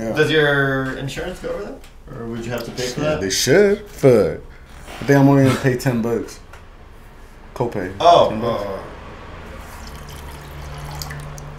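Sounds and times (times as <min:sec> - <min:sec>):
speech: 0:00.0 - 0:06.4, 0:07.6 - 0:08.9
water sloshing in a pot: 0:09.6 - 0:11.5.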